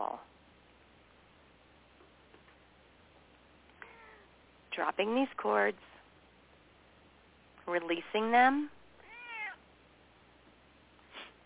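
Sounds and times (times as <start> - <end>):
cat meowing: 3.8 - 4.3, 9.0 - 9.6
speech: 4.8 - 6.0, 7.7 - 8.8.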